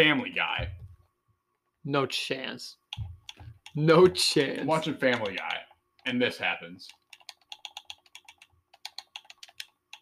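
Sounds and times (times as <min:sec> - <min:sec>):
speech: 0:00.0 - 0:00.8, 0:01.8 - 0:03.1, 0:03.8 - 0:07.0
rapid button clicking on an Xbox controller: 0:02.9 - 0:06.1, 0:06.9 - 0:10.0.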